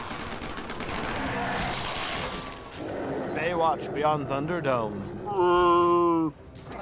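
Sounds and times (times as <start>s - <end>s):
dense rapid gunfire in a film scene: 0.0s - 1.9s
speech: 3.4s - 6.4s.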